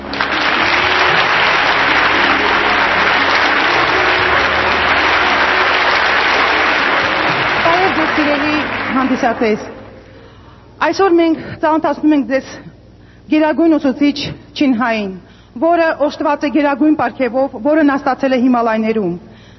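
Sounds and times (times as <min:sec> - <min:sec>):
large audience applauding in Armenia: 0:00.0 - 0:10.1
speech: 0:08.9 - 0:09.8, 0:10.8 - 0:12.7, 0:13.3 - 0:19.3.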